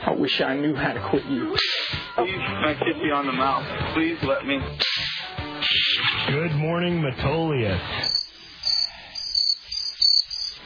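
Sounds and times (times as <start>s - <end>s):
speech: 0.2s - 4.9s, 5.7s - 8.1s
crickets chirping: 8.0s - 10.6s.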